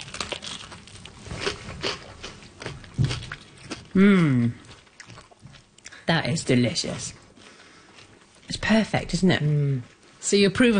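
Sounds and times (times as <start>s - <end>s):
crunchy bites into homemade food: 0.0s - 4.0s
chewing: 0.0s - 10.2s
speech: 4.0s - 4.6s, 6.1s - 7.2s, 8.7s - 10.7s.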